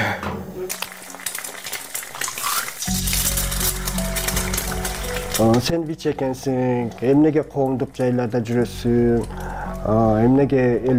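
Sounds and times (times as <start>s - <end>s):
eggs frying in a pan: 0.4s - 10.9s
utensils clinking and scraping: 1.6s - 10.3s
speech: 5.4s - 10.9s.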